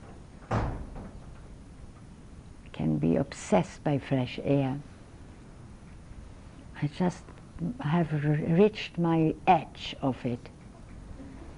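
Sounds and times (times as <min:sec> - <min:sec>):
door swinging shut with a soft solid thud: 0:00.4 - 0:01.4
speech: 0:02.8 - 0:04.9, 0:06.8 - 0:10.6.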